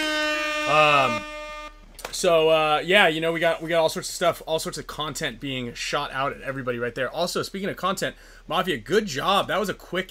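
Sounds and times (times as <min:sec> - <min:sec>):
loud sustained air horn blast: 0:00.0 - 0:01.9
speech: 0:00.7 - 0:01.3, 0:02.2 - 0:10.0.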